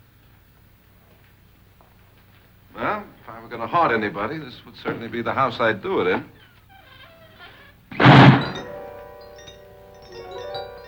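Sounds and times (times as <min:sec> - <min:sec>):
speech: 0:02.8 - 0:06.4
heavy solid steel door slamming shut: 0:07.9 - 0:08.9.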